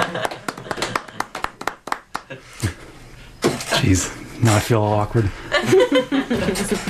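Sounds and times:
laughter: 0.0 - 1.3, 5.4 - 6.8
single person clapping their hands: 0.0 - 2.4
speech: 3.9 - 6.8.

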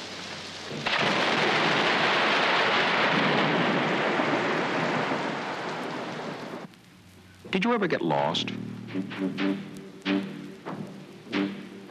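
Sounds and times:
heavy thunderstorm downpour: 0.0 - 11.8
thunder: 0.7 - 6.7
speech: 7.5 - 10.3.

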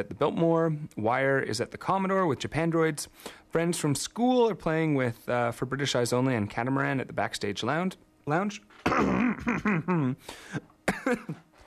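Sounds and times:
speech: 0.0 - 11.4
person giving an exaggerated theatrical cough: 8.8 - 11.5.

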